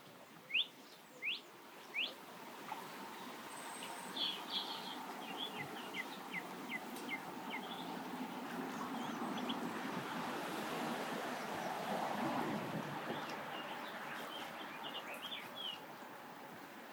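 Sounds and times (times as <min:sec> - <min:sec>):
song thrush singing short repeated phrases: 0:00.4 - 0:02.2, 0:03.2 - 0:09.9, 0:13.1 - 0:16.1
steady rushing roar of wind: 0:07.2 - 0:14.2.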